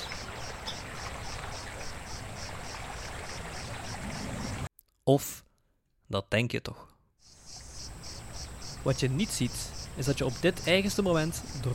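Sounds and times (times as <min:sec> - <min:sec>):
brook water babbling gently: 0:00.0 - 0:04.7, 0:07.2 - 0:11.7
speech: 0:05.1 - 0:05.4, 0:06.1 - 0:06.9, 0:08.8 - 0:11.7.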